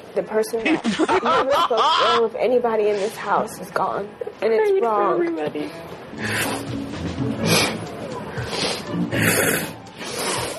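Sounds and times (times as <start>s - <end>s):
speech: 0.2s - 7.0s, 9.0s - 9.8s
crying people sniffling with runny noses: 7.4s - 10.5s.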